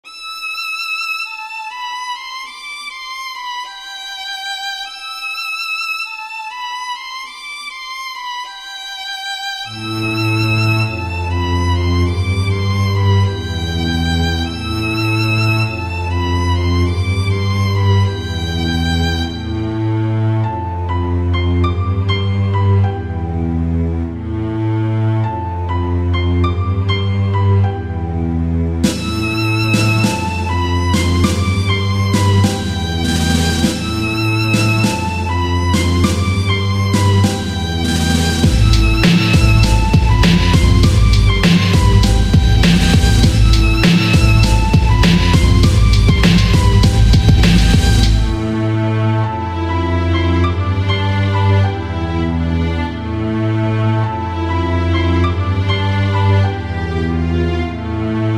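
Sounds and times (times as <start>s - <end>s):
violin: 0.0s - 58.3s
beats: 28.8s - 48.6s.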